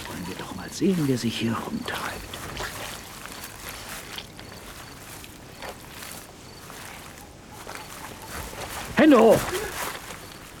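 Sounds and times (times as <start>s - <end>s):
steady watery hiss: 0.0s - 7.0s
slow footsteps squelching through wet boggy ground in a moor: 0.0s - 10.5s
speech: 0.8s - 2.2s, 9.1s - 9.6s.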